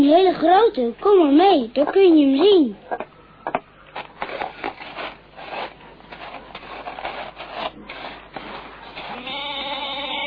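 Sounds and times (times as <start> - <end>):
speech: 0.0 - 3.1
scraping and rustling: 3.9 - 9.6
large goat bleating: 9.1 - 10.2.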